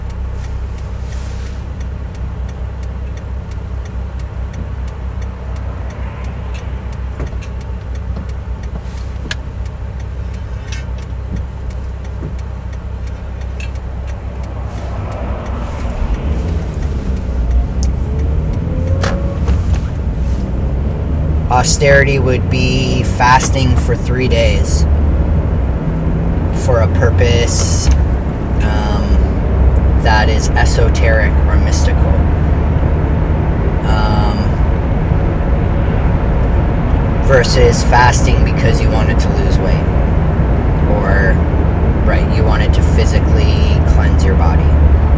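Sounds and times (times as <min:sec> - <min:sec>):
faint clicking ticks: 0:00.0 - 0:20.1
car passing: 0:00.0 - 0:45.1
road traffic rumbling: 0:00.0 - 0:45.1
speech: 0:21.6 - 0:25.0, 0:26.7 - 0:28.0, 0:30.0 - 0:32.3, 0:37.3 - 0:39.9, 0:42.1 - 0:45.0.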